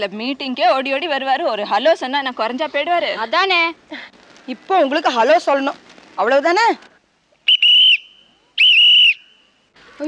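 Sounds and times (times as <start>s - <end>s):
speech: 0.0s - 6.9s
man whistling: 7.5s - 9.3s.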